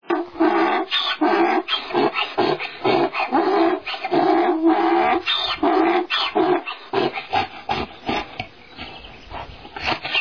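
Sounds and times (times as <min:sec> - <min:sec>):
donkey braying in harmonic see-sawing pulses: 0:00.1 - 0:08.4.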